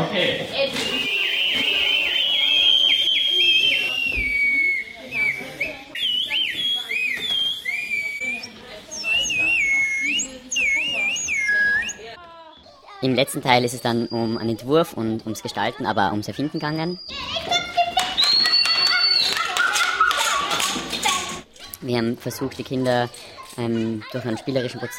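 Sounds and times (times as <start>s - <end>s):
faint chatter: 0.0s - 24.9s
homemade wooden whistle being blown: 0.8s - 12.1s, 18.1s - 20.3s
speech: 13.0s - 17.3s, 21.8s - 24.9s.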